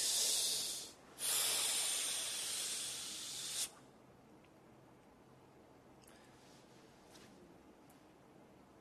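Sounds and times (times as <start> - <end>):
slow deep breath: 0.0 - 3.8.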